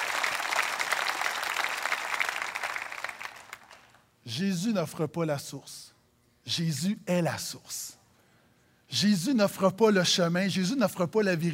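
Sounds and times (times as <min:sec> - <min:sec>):
audience applause: 0:00.0 - 0:04.0
speech: 0:04.2 - 0:08.0, 0:08.9 - 0:11.5.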